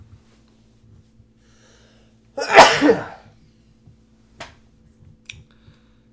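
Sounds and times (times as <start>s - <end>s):
speech: 2.4s - 3.1s
loud sneeze: 2.4s - 3.2s.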